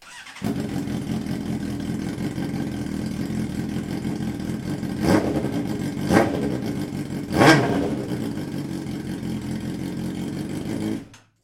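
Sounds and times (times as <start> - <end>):
motorcycle engine idling and revving: 0.0 - 11.3.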